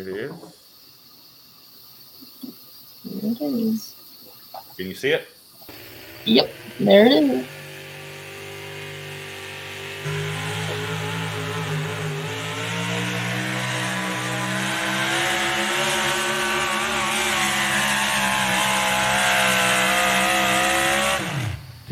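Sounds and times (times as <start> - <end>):
speech: 0.0 - 0.6, 3.2 - 4.0, 4.7 - 5.4, 6.2 - 7.6
650 cubic inch pulling engine roaring at a pulling event: 5.7 - 21.9.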